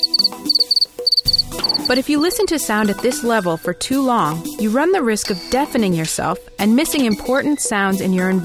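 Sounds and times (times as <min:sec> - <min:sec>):
speech: 0:00.0 - 0:01.1, 0:01.9 - 0:08.4
crickets chirping: 0:00.0 - 0:02.3.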